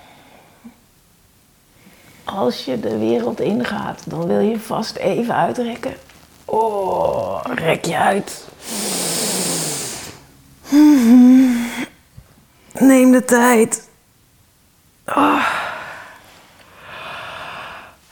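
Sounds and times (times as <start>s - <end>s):
speech: 2.3s - 8.8s, 12.8s - 13.9s
person yawning: 10.7s - 11.9s, 15.1s - 15.8s.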